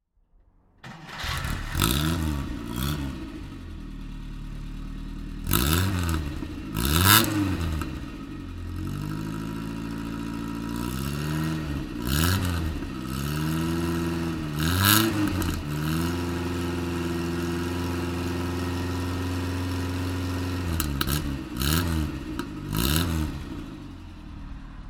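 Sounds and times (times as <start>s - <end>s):
Lancia Ardea car: 0.8s - 24.8s.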